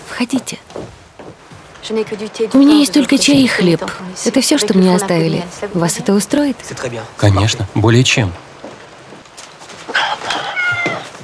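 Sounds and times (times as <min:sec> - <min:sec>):
speech: 0:00.2 - 0:01.0, 0:01.8 - 0:08.4
cat meowing: 0:09.9 - 0:11.2.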